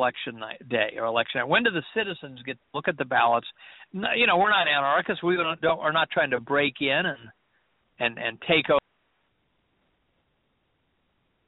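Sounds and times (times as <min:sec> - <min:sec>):
speech: 0:00.0 - 0:07.4, 0:08.0 - 0:08.8
faint band-limited static hiss on a phone line: 0:00.0 - 0:11.4.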